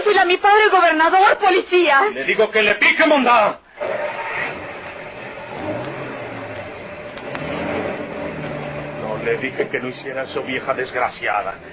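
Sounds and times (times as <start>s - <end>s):
speech: 0.1s - 3.6s, 9.2s - 11.7s
car engine revving and pulling away: 3.7s - 11.7s.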